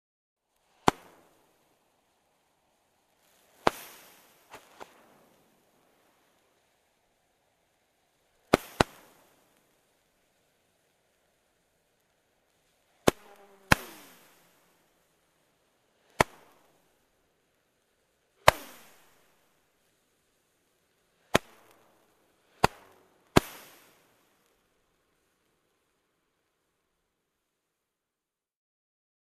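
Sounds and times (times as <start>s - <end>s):
fireworks being set off: 0.6s - 2.2s, 2.8s - 6.8s, 8.2s - 10.6s, 12.5s - 17.1s, 18.4s - 20.0s, 20.8s - 25.3s.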